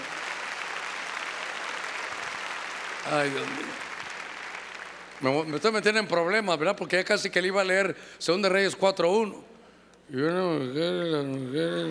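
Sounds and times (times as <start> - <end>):
crowd clapping loudly: 0.0 - 5.9
speech: 3.0 - 3.9, 5.2 - 9.5, 10.1 - 11.9.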